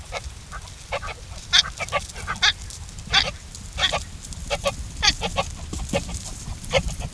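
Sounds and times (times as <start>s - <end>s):
Procapra gutturosa male chasing female: 0.0s - 7.1s.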